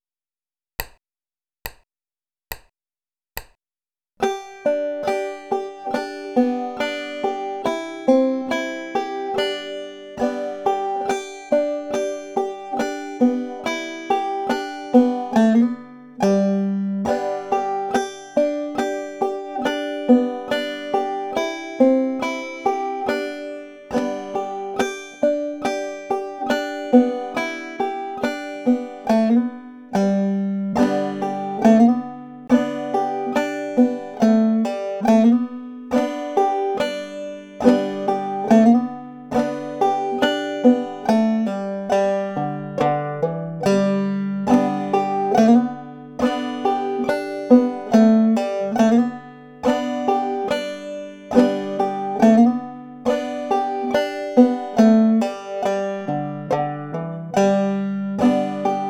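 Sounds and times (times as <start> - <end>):
string playing with hammer-ons, pull-offs, slides and drop thumbing: 0.8 - 1.0, 1.6 - 1.9, 2.5 - 2.7, 3.4 - 3.6, 4.2 - 58.8.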